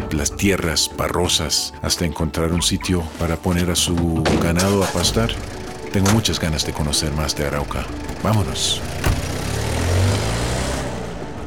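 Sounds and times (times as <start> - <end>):
speech: 0.1 - 9.1
car engine humming inside a moving car: 7.8 - 10.4
brief thump: 9.0 - 9.5.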